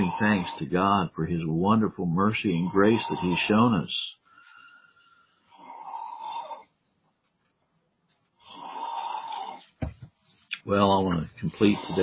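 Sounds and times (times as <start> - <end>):
loud rasping human snoring: 0.0 - 1.0, 2.4 - 3.8, 5.4 - 6.7, 8.4 - 9.7, 11.4 - 12.0
speech: 0.0 - 4.2, 10.6 - 12.0.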